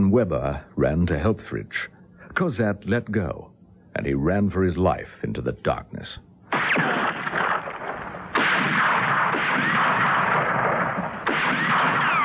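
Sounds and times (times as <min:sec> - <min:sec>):
speech: 0:00.1 - 0:07.0
gunfire of men shooting at a fleeing man: 0:06.5 - 0:12.2.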